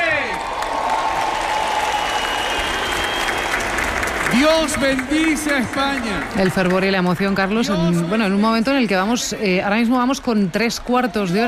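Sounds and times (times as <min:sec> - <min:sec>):
crowd applause and cheering in corridors packed with people: 0:00.0 - 0:08.7
speech: 0:04.4 - 0:11.4.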